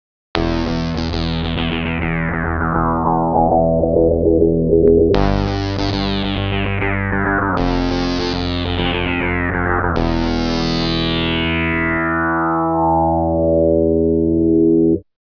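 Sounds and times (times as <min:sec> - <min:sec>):
slow wah synth: 0:00.4 - 0:15.0.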